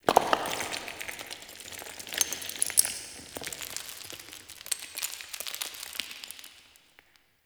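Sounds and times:
stone crumbling: 0.1 - 4.9.

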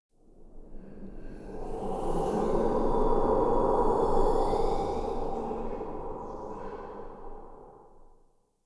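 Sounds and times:
corrupted wind gust ambience: 0.3 - 8.1.

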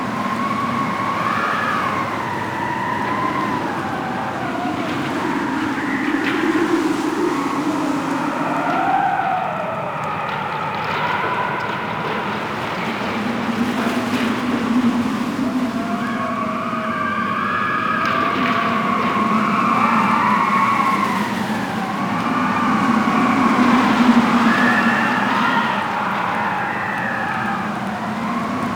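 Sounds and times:
wind ambience outside shipyards: 0.0 - 28.7.

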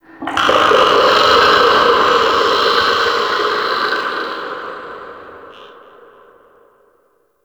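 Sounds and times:
eerie distant shipyard ambience: 0.0 - 7.2.

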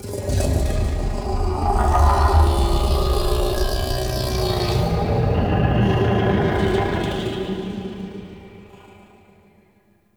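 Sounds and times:
growly vocal ambience: 0.1 - 7.4.

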